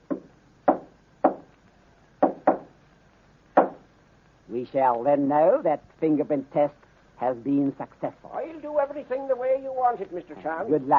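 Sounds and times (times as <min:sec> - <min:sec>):
knocking on a wooden living room door: 0:02.2 - 0:02.7
speech: 0:04.5 - 0:10.9.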